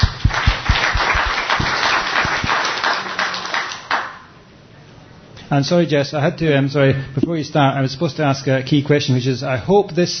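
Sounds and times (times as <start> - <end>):
audience applause: 0.0 - 4.2
speech: 5.5 - 10.1.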